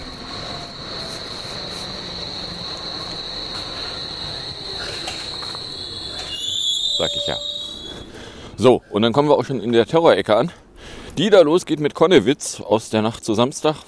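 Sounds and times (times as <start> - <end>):
DT5 subway train arriving and rumbling in overcast weather: 0.0 - 8.9
high-pitched metallic wheel squeal of DT5 subway train: 5.1 - 8.2
speech: 7.0 - 7.6, 8.6 - 10.6, 11.2 - 13.8.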